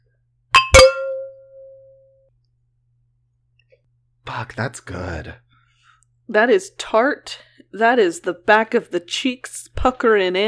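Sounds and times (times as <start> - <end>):
wine glasses clinking in a toast: 0.6 - 1.9
speech: 4.3 - 5.4, 6.3 - 10.4.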